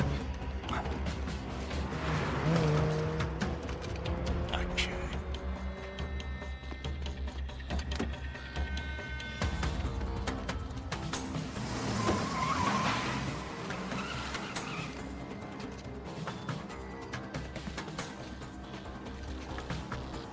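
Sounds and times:
car tires screeching as a vehicle skids to a halt: 0.0s - 6.8s, 11.1s - 16.6s
engine and road noise: 0.0s - 20.3s.

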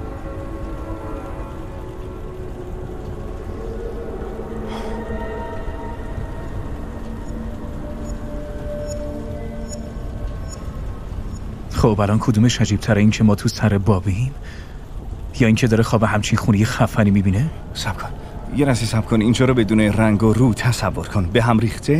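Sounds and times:
rain falling in a steady dense hiss: 0.0s - 21.9s
speech: 11.8s - 14.7s, 15.4s - 21.9s.

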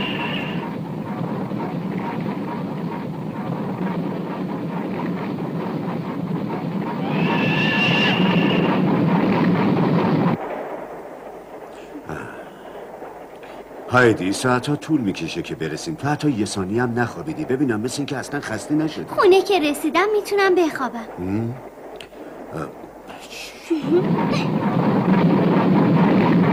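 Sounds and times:
train rumbling into a station: 0.0s - 26.5s
high metallic train brake squeals: 7.0s - 8.8s
speech: 14.0s - 21.7s, 22.5s - 22.8s.

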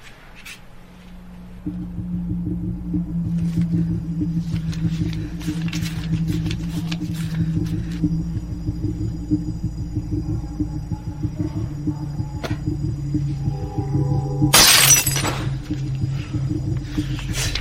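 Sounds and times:
steady low hum: 0.0s - 17.5s
drinking glass shattering: 14.6s - 15.5s.

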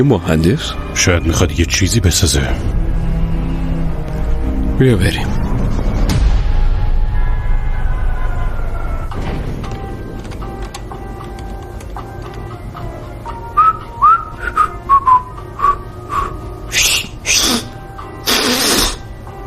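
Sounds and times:
speech: 0.0s - 2.8s, 4.8s - 5.4s
steady hum: 0.0s - 19.4s
person whistling a short halting tune: 13.4s - 17.7s.

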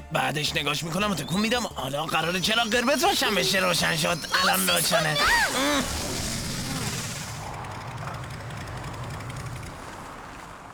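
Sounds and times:
speech: 0.1s - 6.2s
car engine sputtering and shutting off: 1.8s - 10.7s.

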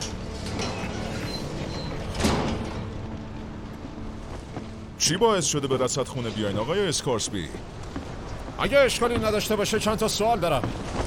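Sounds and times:
door sliding and thumping shut: 0.4s - 3.0s
speech: 5.0s - 7.8s, 8.6s - 11.0s.

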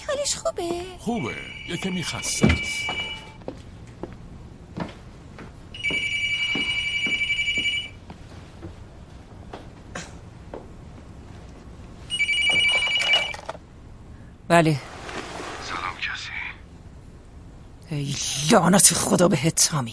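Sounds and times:
speech: 0.2s - 3.2s, 14.5s - 14.9s, 18.0s - 19.9s
telephone ringing with electronic trill: 1.1s - 3.4s, 5.8s - 8.0s, 12.1s - 13.6s
household noise: 14.8s - 16.2s.

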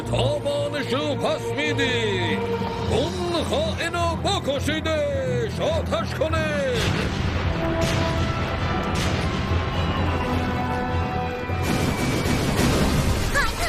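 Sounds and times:
speech: 0.1s - 8.2s
artillery booming impacts: 6.9s - 10.4s, 11.5s - 13.5s.

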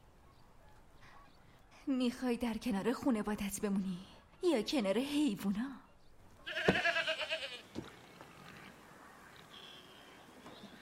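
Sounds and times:
speech: 1.8s - 5.8s
single goat bleating with a wavering nasal cry: 6.4s - 7.6s.

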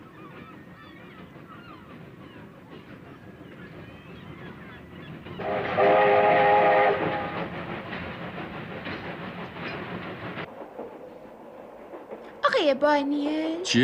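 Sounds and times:
train at a railway station rumbling and clattering: 0.0s - 13.8s
sustained horn-like tone: 5.4s - 7.4s
speech: 12.8s - 13.8s.

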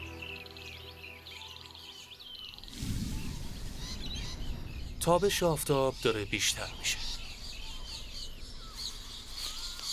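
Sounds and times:
flying squirrels chirping and calling in warning bursts: 1.7s - 5.0s, 5.8s - 9.9s
speech: 5.0s - 7.0s.

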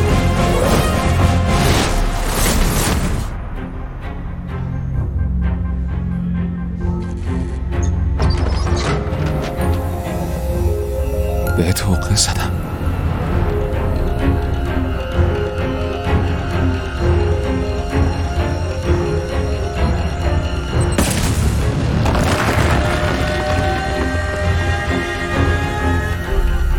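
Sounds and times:
dramatic soundtrack with deep low-end boom: 0.0s - 26.7s
loud explosion with a rumbling tail: 21.0s - 23.8s.

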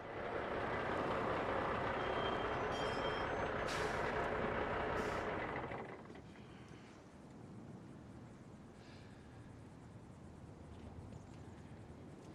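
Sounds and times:
large truck engine rumbling and shutting off: 0.0s - 6.7s
air brake release hissing: 2.8s - 4.2s, 4.9s - 5.4s.

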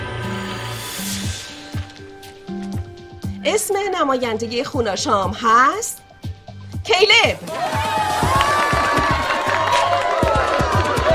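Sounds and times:
speech: 3.4s - 6.0s, 6.9s - 8.1s
crowd of children cheering and shouting: 7.4s - 11.1s
clapping: 7.5s - 11.1s.

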